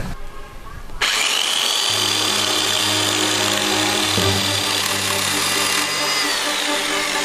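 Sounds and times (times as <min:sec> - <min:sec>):
carpenter's electric chainsaw running: 0:01.0 - 0:07.2.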